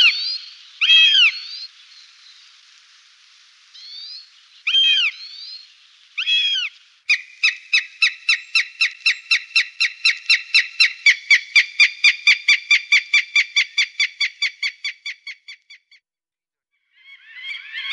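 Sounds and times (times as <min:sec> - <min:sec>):
Northern goshawk squealing and cackling call: 0:00.8 - 0:01.5, 0:04.7 - 0:05.3, 0:06.2 - 0:15.6.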